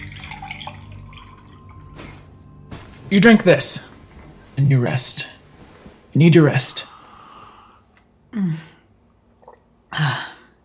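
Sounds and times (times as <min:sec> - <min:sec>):
water pouring into a glass: 0:00.0 - 0:02.0
speech: 0:03.1 - 0:03.9, 0:04.6 - 0:05.3, 0:06.2 - 0:06.9.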